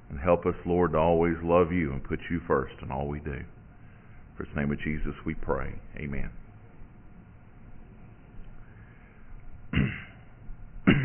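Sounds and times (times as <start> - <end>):
speech: 0.2 - 3.6, 4.4 - 6.4
person coughing: 9.8 - 11.0.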